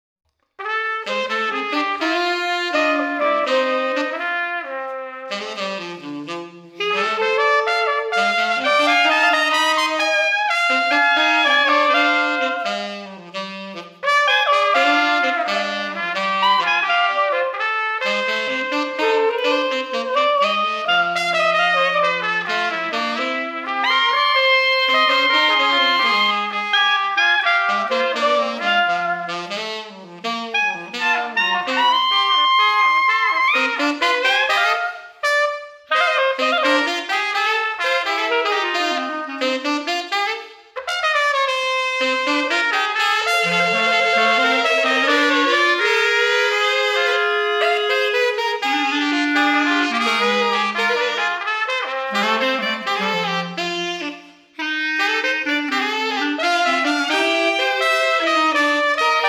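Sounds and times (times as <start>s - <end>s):
street brass band: 0.6s - 59.2s.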